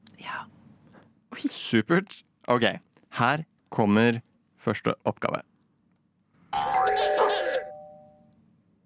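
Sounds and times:
speech: 1.4s - 5.5s
two-tone doorbell ding-dong: 6.6s - 8.3s.

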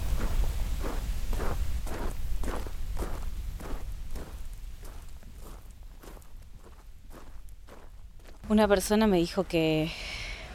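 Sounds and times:
footsteps of a person walking to a confectionery shop on a hard surface: 0.1s - 8.5s
speech: 8.5s - 10.1s.

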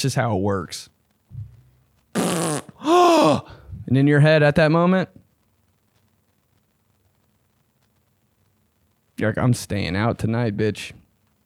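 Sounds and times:
speech: 0.0s - 1.0s, 2.9s - 5.2s, 9.2s - 11.0s
faint low rumble: 0.0s - 2.1s, 3.5s - 11.4s
loud raspy fart sound effect: 1.3s - 2.8s.

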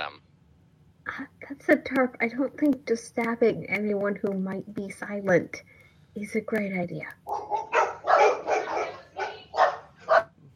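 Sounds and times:
speech: 1.2s - 7.8s
dogs barking at something outside: 7.3s - 10.4s.

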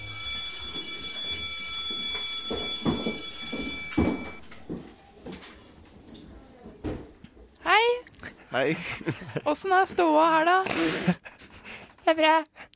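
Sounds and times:
electronic school bell buzzing in a classroom: 0.0s - 4.7s
speech: 8.6s - 11.2s, 12.1s - 12.6s
laughter: 8.7s - 9.6s.

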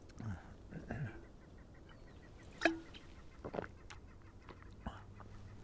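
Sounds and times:
faint murmuring: 0.2s - 2.0s
bird squawking and quacking: 0.9s - 5.6s.

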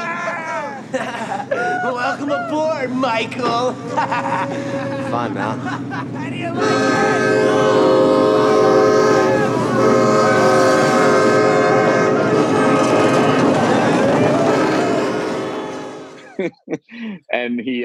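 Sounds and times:
laughter: 0.0s - 7.8s, 11.8s - 17.2s
heavy rumbling of rolling rail cars: 0.0s - 16.4s
speech: 2.2s - 7.9s, 17.4s - 17.8s
train horn blaring in layered tones in a film scene: 6.6s - 16.3s.

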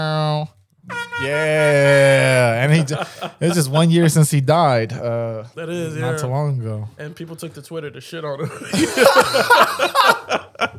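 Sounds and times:
air horn blasts: 0.8s - 2.2s
laughter: 1.2s - 3.8s, 8.4s - 10.7s
speech: 1.2s - 10.7s.

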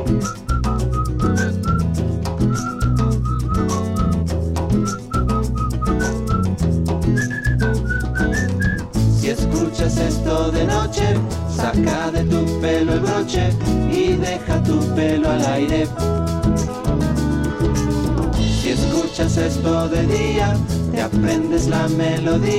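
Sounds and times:
person whistling a melody of short bouncing notes: 0.0s - 9.9s
steady musical backing with drums and bass: 0.0s - 22.5s.

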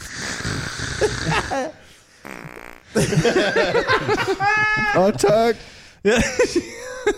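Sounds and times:
wet sputtering fart-like noise: 0.0s - 1.6s, 2.2s - 3.0s
speech: 1.3s - 7.1s
laughter: 3.0s - 7.1s.

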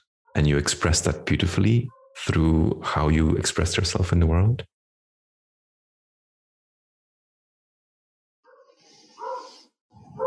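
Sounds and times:
speech: 0.4s - 4.7s
dog barking: 8.5s - 10.2s.

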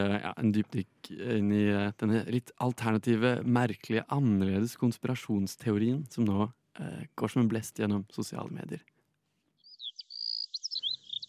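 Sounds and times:
speech: 0.0s - 8.9s
birds chirping: 9.6s - 11.2s.

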